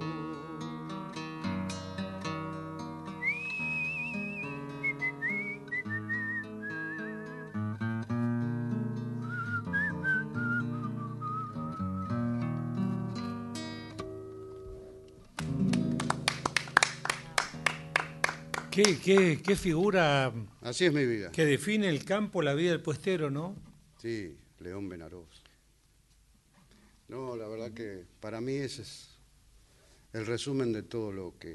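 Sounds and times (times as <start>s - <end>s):
music: 0.0s - 19.6s
person whistling a wavering melodic tune: 3.2s - 7.9s, 9.2s - 12.3s
speech: 18.8s - 25.4s, 27.8s - 29.1s, 30.1s - 31.5s.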